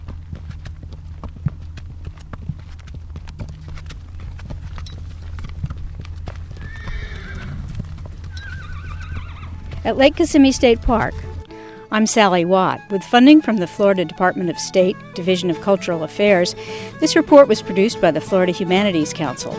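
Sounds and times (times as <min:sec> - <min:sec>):
low rumbling background: 0:00.0 - 0:11.7
horse hooves clip-clopping at a walking pace: 0:00.0 - 0:12.2, 0:13.0 - 0:19.5
horse whinnying: 0:06.5 - 0:09.8
speech: 0:09.9 - 0:11.3, 0:11.9 - 0:19.5.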